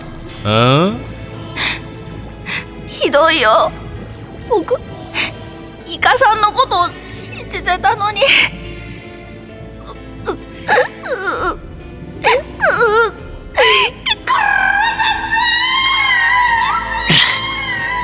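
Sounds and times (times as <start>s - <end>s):
speech: 0.4s - 1.1s, 3.1s - 3.8s, 4.5s - 4.9s, 5.9s - 8.6s, 10.3s - 11.6s, 12.2s - 14.5s
loud crying: 12.2s - 18.0s.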